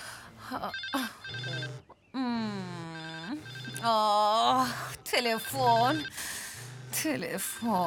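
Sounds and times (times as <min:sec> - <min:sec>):
voices: 0:00.4 - 0:07.8
telephone ringing with a warbling melodic ringtone: 0:00.6 - 0:01.9, 0:02.9 - 0:07.8.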